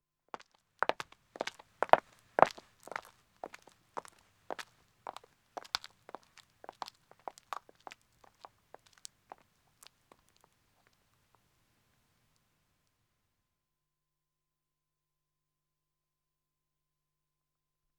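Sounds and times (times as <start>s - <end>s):
footsteps of two women walking on a country road: 0.4s - 11.0s.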